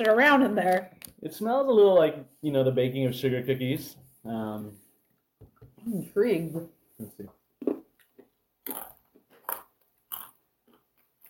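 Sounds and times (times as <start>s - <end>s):
speech: 0.0s - 4.8s, 5.8s - 7.7s
roasted almonds being chewed: 7.6s - 11.2s.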